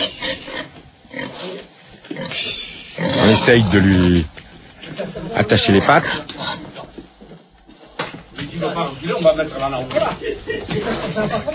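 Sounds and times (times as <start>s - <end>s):
pig grunting and snorting as it is led out: 0.0s - 4.3s, 5.4s - 7.5s
speech: 3.3s - 4.4s, 5.0s - 6.6s, 9.0s - 11.5s
laughter: 9.9s - 11.5s.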